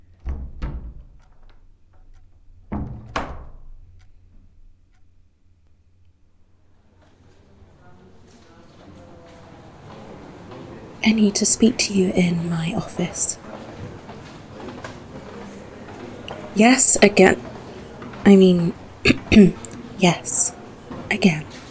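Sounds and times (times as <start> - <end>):
wooden door slamming shut: 0.0 - 5.0
speech: 11.0 - 13.7, 16.6 - 17.5, 18.3 - 20.4, 21.1 - 21.6.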